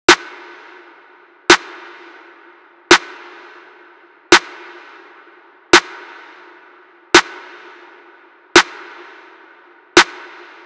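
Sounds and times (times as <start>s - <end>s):
170 BPM snare drum loop: 1.5s - 2.2s, 2.9s - 3.6s, 5.8s - 6.0s, 7.2s - 7.5s, 8.6s - 9.2s, 10.0s - 10.6s.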